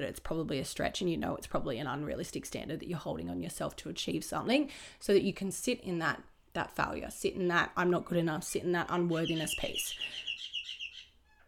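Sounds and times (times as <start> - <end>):
speech: 0.0 - 10.3
bird chirping loudly: 9.0 - 11.4.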